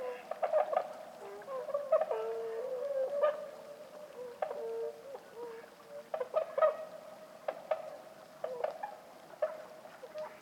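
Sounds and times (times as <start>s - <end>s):
Bewick's swans calling at night roost on Lac du Der, France: 0.0s - 10.4s.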